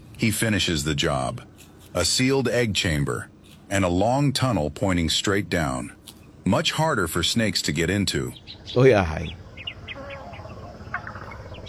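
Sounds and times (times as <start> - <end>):
warbler chirping: 0.0 - 11.6
speech: 0.2 - 9.4.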